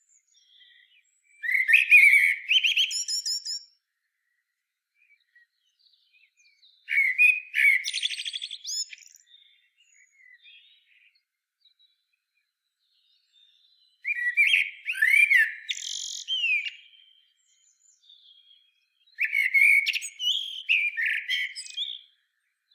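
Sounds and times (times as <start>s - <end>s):
Common blackbird Turdus merula singing rich whistled phrases: 0.1s - 3.8s, 6.8s - 11.0s, 13.3s - 22.2s.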